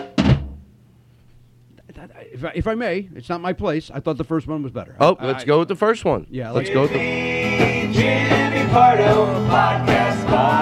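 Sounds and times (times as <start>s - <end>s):
heavy drum thump with deep boom: 0.0s - 0.7s
speech: 2.0s - 10.6s.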